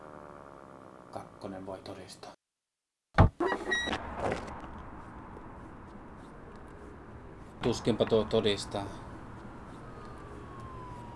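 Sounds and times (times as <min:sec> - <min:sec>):
speech: 0:01.2 - 0:02.4, 0:07.7 - 0:09.1
constant broadband rumble: 0:03.3 - 0:11.1
police car siren wailing: 0:03.5 - 0:11.1.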